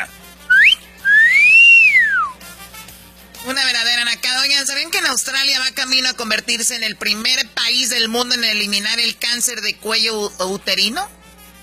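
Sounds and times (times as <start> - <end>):
person whistling a catcall: 0.5 - 2.4
speech: 4.6 - 11.2.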